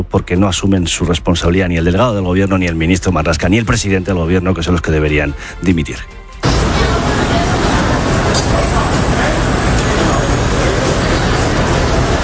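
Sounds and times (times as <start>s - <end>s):
speech: 0.0s - 6.2s
morning street traffic in Manhattan, New York City: 6.4s - 12.2s
murmur of crowd babble: 6.4s - 12.2s.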